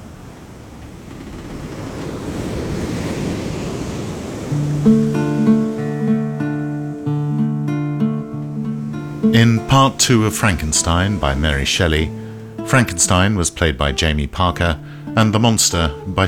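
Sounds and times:
ocean waves crashing: 0.0 - 16.2
sustained musical tones: 4.5 - 16.2
speech: 4.8 - 5.0, 9.4 - 16.2.

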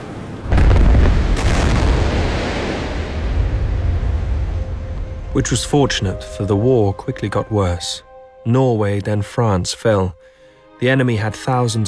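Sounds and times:
depth charges fired from a warship during drills: 0.5 - 5.2
speech: 5.4 - 11.8.

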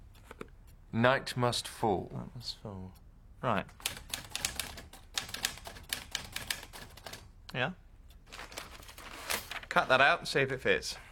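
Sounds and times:
speech: 0.9 - 4.0, 7.5 - 7.8, 9.8 - 11.0
typewriter keys clacking while typing replacement panels: 3.8 - 7.3.

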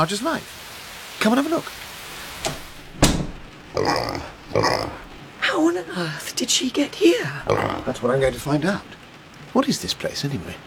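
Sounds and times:
speech: 0.0 - 1.9, 3.8 - 5.0, 5.6 - 10.6
brief thuds: 2.2 - 5.2
pig grunting and oinking: 2.8 - 5.2, 7.4 - 8.8.

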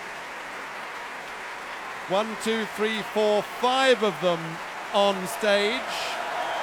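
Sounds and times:
large concert audience cheering and applauding in a big hall: 0.0 - 6.6
speech: 2.1 - 6.2.

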